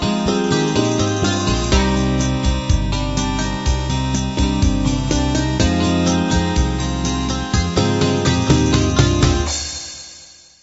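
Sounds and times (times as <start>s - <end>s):
light rock intro: 0.1s - 10.4s.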